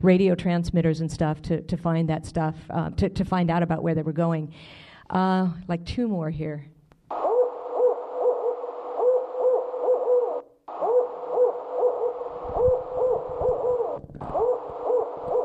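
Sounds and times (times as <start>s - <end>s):
speech: 0.0s - 7.2s
barred owl hooting: 7.1s - 15.4s
low rumbling noise: 7.1s - 15.4s.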